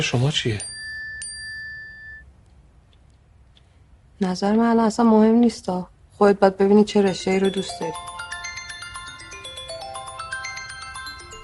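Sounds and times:
speech: 0.0 - 0.8, 4.2 - 8.1
melodic phone ringtone: 0.6 - 2.3, 7.1 - 11.4.

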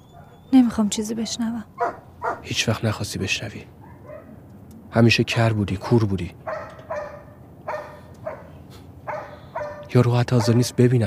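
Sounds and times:
dog barking: 0.1 - 0.5, 1.2 - 2.5, 3.8 - 4.4, 5.8 - 10.8
speech: 0.7 - 3.8, 4.9 - 6.4, 9.9 - 11.0.

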